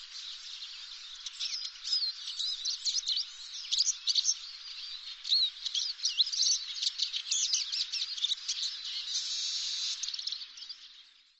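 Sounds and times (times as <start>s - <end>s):
bird twittering with high chirps and trills: 0.0s - 10.4s
steady rasping hiss of bird calls: 9.1s - 10.1s.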